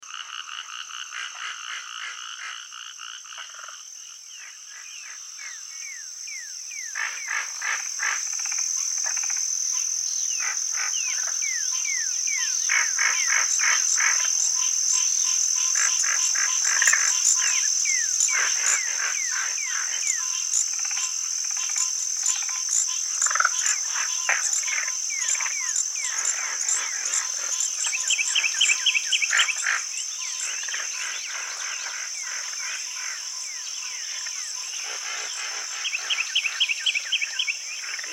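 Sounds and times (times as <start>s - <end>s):
frogs: 0.0s - 38.1s.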